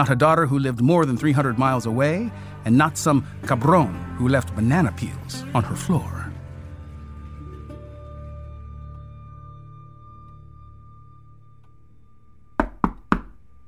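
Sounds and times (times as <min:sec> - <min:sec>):
speech: 0:00.0 - 0:06.2
firm knocks on a door: 0:12.6 - 0:13.4.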